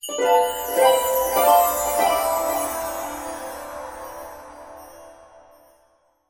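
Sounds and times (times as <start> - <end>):
magic sound effect: 0.1 - 5.7.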